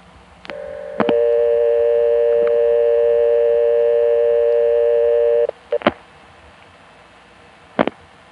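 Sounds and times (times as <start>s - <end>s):
telephone line multi-tone hum to a phone in King George Virginia: 0.4s - 5.8s.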